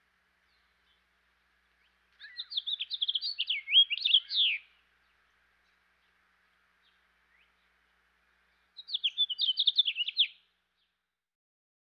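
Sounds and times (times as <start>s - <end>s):
house finch singing a lively tumbling warble in Eastern North America: 1.7s - 7.8s, 8.4s - 10.4s.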